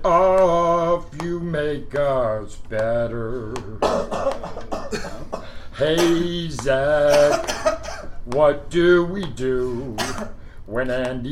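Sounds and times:
speech: 0.0 - 0.3, 1.6 - 7.7, 8.3 - 11.3
short harsh coughs: 3.8 - 6.1, 7.1 - 8.2, 9.9 - 10.4.

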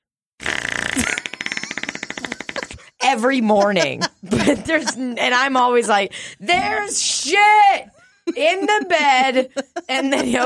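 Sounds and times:
voice imitating a fart with a buzzy raspberry: 0.4 - 2.8
laughter: 1.0 - 6.0, 8.1 - 10.4
speech: 3.1 - 10.4.

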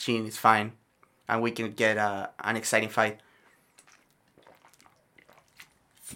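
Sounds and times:
speech: 0.0 - 3.3
person sipping water: 2.6 - 6.1
swallowing: 3.2 - 6.1
soft wet mouth clicks: 3.4 - 6.1.

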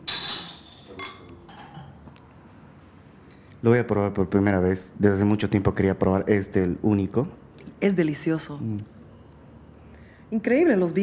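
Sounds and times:
glasses of Tannat wine clinking in a toast in Bolivia: 0.0 - 2.0
speech: 3.6 - 9.0, 10.3 - 11.0.

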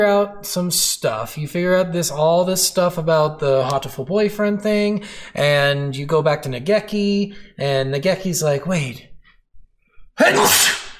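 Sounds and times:
speech: 0.0 - 9.1, 10.2 - 10.8
sneeze: 10.2 - 10.9.

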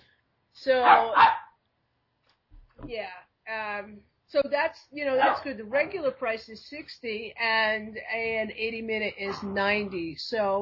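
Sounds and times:
speech: 0.6 - 1.4, 2.9 - 10.5
excited dog yelping while jumping up and down: 0.8 - 1.5.

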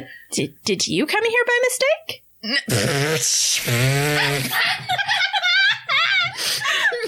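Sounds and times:
speech: 0.0 - 5.4
fart noises blown with the mouth at a horse camp: 2.4 - 4.6
several people giggling and laughing: 4.2 - 7.0.

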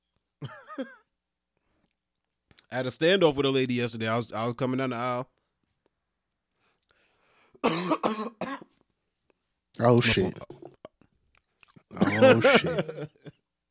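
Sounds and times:
speech: 0.4 - 1.0, 2.7 - 5.4, 7.6 - 8.4, 9.8 - 10.6, 12.0 - 13.4
person coughing loud throaty bursts: 7.6 - 8.7, 12.0 - 13.0
laughter: 12.0 - 13.3.

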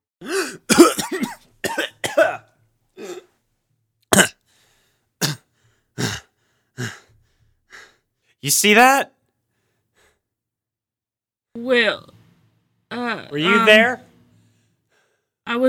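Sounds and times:
person coughing harshly: 0.2 - 3.3, 4.1 - 4.4, 5.2 - 6.3
person sputtering and choking: 4.1 - 4.3
speech: 8.5 - 9.2, 11.6 - 12.1, 13.3 - 14.0.

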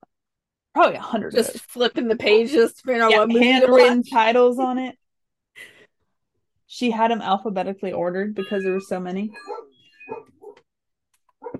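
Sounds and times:
speech: 0.8 - 5.0, 6.7 - 10.4
puppy barking in high-pitched yaps: 9.4 - 10.6, 11.4 - 11.5.

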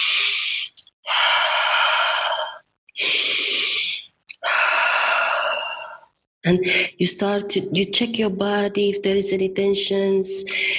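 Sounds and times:
slow deep breathing for meditation exercise: 0.0 - 6.1
speech: 6.5 - 10.7.

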